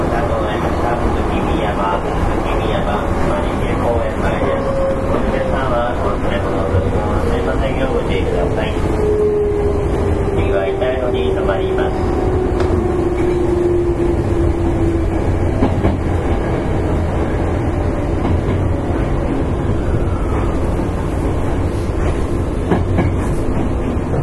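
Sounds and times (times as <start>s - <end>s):
low rumble of wheels and motors aboard an electric commuter train: 0.0s - 24.2s.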